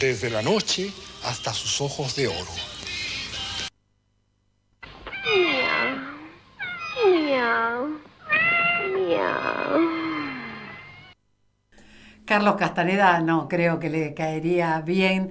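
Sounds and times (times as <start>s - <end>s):
speech: 0.0s - 2.9s, 12.3s - 15.2s
cat meowing: 5.0s - 11.2s.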